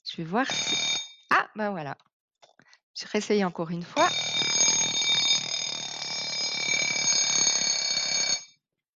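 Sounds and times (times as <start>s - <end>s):
speech: 0.2s - 2.1s, 3.0s - 4.5s
alarm clock ringing: 0.4s - 1.3s, 4.0s - 8.6s.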